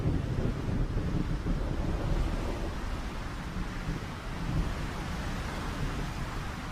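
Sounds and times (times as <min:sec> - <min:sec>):
strong violent gusts of wind: 0:00.0 - 0:06.7.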